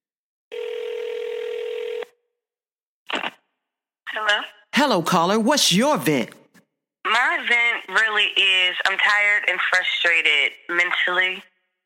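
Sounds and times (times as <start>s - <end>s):
steady telephone tone as a call is placed: 0.5s - 2.2s
speech: 4.2s - 6.4s, 7.4s - 11.5s.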